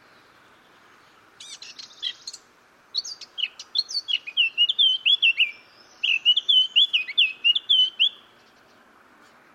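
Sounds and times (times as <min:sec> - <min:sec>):
Eurasian blackcap Sylvia atricapilla singing buzzy rattle and fluting phrases: 0:01.4 - 0:08.6.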